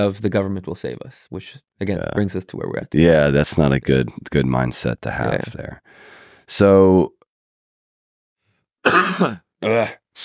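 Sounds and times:
speech: 0.0s - 7.2s, 8.8s - 10.2s
person with a cough coughing: 8.9s - 9.4s.

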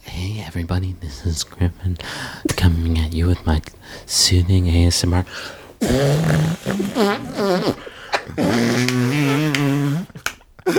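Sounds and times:
speech: 0.3s - 10.7s
arm farts: 5.8s - 10.2s.

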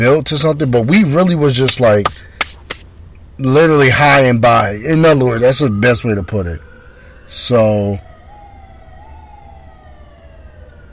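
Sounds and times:
speech: 0.0s - 2.3s, 3.4s - 6.7s, 7.3s - 8.1s
ambulance siren wailing: 4.8s - 10.9s.

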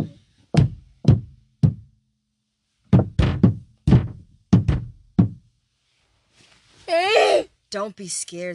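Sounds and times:
sharp hollow knocks on wood: 0.0s - 1.8s, 2.9s - 5.4s
faint rustle: 5.7s - 7.1s
speech: 7.7s - 8.5s.

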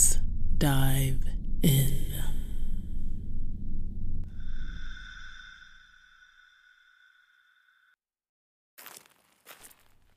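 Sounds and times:
sustained high droning tone: 0.0s - 8.0s
speech: 0.6s - 2.1s
heavy crunching footsteps in a cave: 8.8s - 10.1s.

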